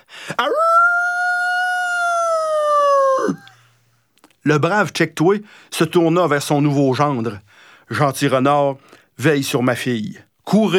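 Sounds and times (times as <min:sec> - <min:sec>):
speech: 0:00.3 - 0:00.7, 0:04.4 - 0:10.7
wolf howling: 0:00.4 - 0:03.5.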